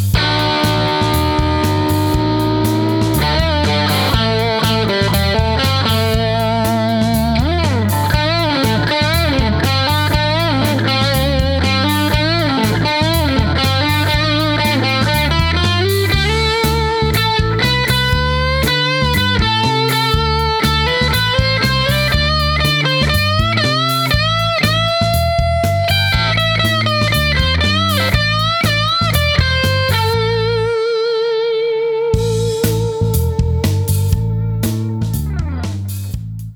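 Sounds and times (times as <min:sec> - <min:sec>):
distorted lead on a 1958 Gibson Les Paul Standard Reissue electric guitar: 0:00.2 - 0:36.3.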